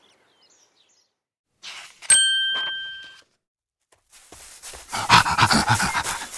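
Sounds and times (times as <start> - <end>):
bright bell ding: 2.1 - 3.2
dog panting rapidly: 4.8 - 6.3.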